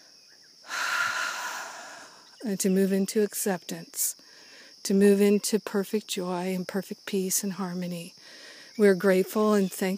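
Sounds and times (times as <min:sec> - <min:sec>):
deep breath taken together during a prayer: 0:00.6 - 0:02.3, 0:08.2 - 0:08.8
speech: 0:02.4 - 0:08.2, 0:08.8 - 0:09.9.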